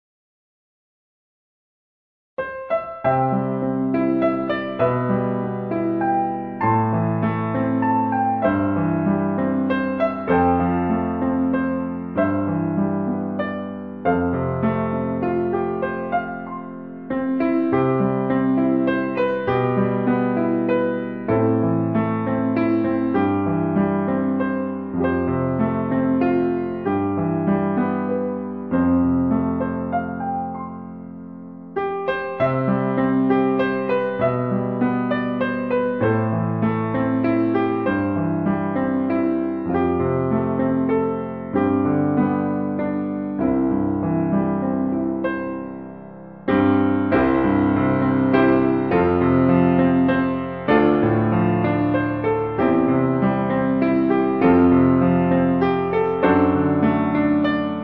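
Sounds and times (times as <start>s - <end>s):
piano: 2.4s - 57.8s.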